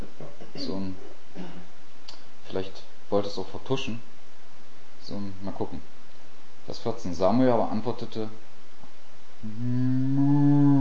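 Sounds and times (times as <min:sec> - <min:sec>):
speech: 0:00.6 - 0:01.6, 0:02.5 - 0:04.2, 0:05.0 - 0:06.0, 0:06.6 - 0:08.5, 0:09.4 - 0:10.7
cow mooing: 0:09.6 - 0:10.7.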